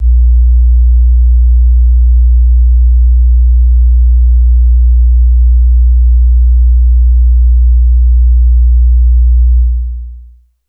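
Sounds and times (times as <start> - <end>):
sub bass: 0.0 - 10.4.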